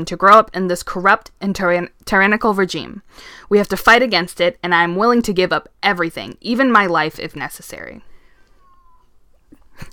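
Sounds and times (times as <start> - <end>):
speech: 0.0 - 8.1, 9.8 - 9.9
cat meowing: 8.3 - 9.2.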